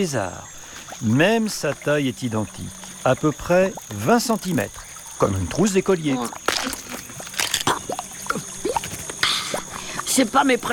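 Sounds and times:
speech: 0.0 - 6.5, 10.2 - 10.7
reptile crunching an insect: 6.2 - 9.8.

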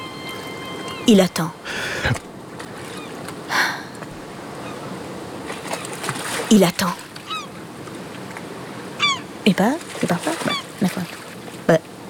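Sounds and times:
waterfowl honking and calling in a harbor: 0.0 - 3.3, 9.0 - 9.3
harbor water lapping around a moored ship: 0.0 - 12.0
speech: 1.1 - 2.3, 6.5 - 7.0, 9.5 - 11.0.

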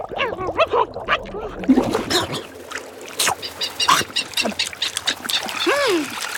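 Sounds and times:
water splashing: 0.0 - 6.3
albatrosses squabbling and calling while feeding on bait: 3.3 - 5.8.

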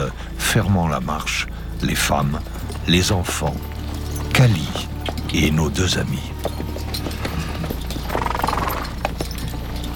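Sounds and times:
speech: 0.5 - 3.7, 4.4 - 6.6
several horses walking, hooves clip-clopping: 1.0 - 9.9
horse snorting or whinnying: 7.0 - 9.2.

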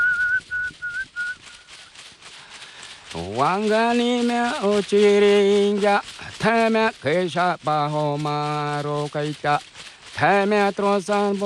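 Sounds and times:
man whistling a tune: 0.0 - 1.7
speech: 3.1 - 11.4.

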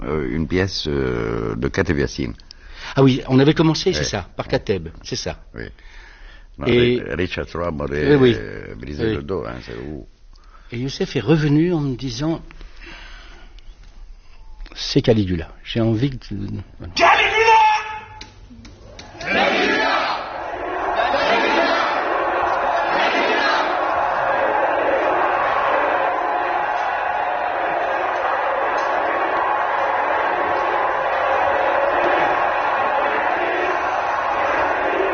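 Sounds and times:
speech: 0.0 - 13.0, 14.8 - 17.3
large crowd shouting entering a theatre stage during a play: 19.1 - 35.1.

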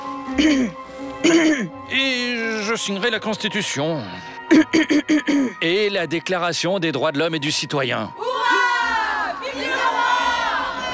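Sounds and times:
speech: 0.4 - 8.6
large crowd cheering and shouting for King Louis XVI: 8.2 - 10.9.

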